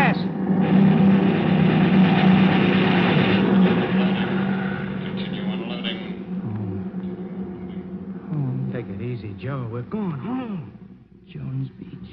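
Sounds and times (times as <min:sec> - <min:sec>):
Messerschmitt fighter planes roaring overhead: 0:00.0 - 0:10.8
indistinct voices: 0:03.3 - 0:12.1.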